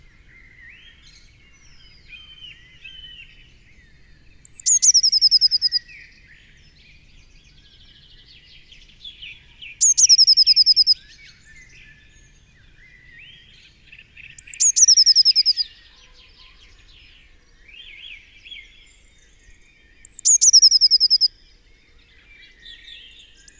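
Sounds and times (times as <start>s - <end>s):
quiet low bird chatter: 0.0s - 23.5s
Eurasian blue tit Cyanistes caeruleus singing high note and silvery trill: 4.5s - 5.8s, 9.8s - 11.0s, 14.4s - 15.7s, 20.1s - 21.3s.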